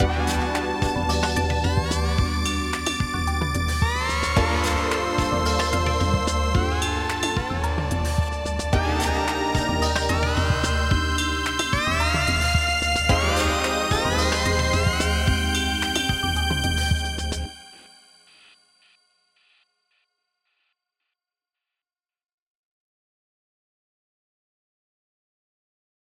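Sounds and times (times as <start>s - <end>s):
randomized bending multinote synth tones: 0.0s - 17.9s.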